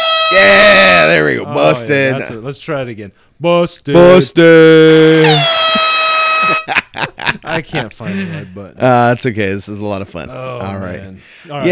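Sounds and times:
loud blaring air horn blast: 0.0 - 1.2, 5.2 - 6.6
speech: 0.3 - 5.7, 7.5 - 11.6
laughter: 5.7 - 8.7.

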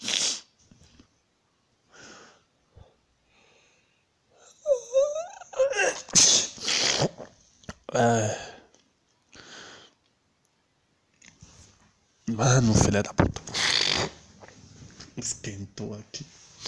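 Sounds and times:
person sneezing: 0.0 - 0.5, 5.6 - 7.4
person sniffing: 0.0 - 0.5, 6.0 - 7.3, 13.5 - 14.2
speech: 8.0 - 8.5, 12.4 - 13.4, 15.2 - 16.6.

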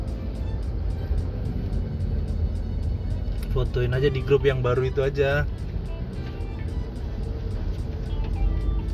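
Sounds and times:
idling and slow-moving road traffic in a traffic jam: 0.0 - 8.9
people chatting: 3.4 - 5.5
speech: 3.6 - 5.7.

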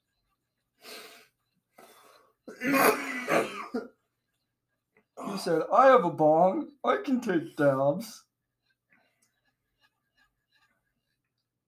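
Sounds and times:
faint breath: 0.8 - 2.4
person clearing their throat: 2.5 - 3.9
person coughing: 2.5 - 3.9
speech: 2.6 - 3.0, 5.4 - 8.3.

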